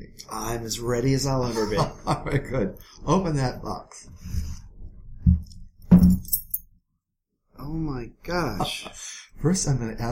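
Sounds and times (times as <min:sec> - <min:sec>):
speech: 0:00.1 - 0:04.4, 0:07.6 - 0:10.1
laughter: 0:01.4 - 0:02.8, 0:08.4 - 0:09.0
four keys on a key ring with a small hook jangling: 0:06.1 - 0:06.6.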